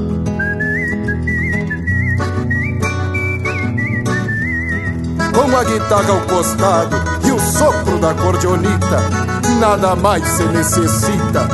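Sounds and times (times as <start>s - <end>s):
full steady musical accompaniment: 0.0s - 11.5s
tuneful human whistling with light vibrato: 0.4s - 5.0s
speech: 5.5s - 11.5s.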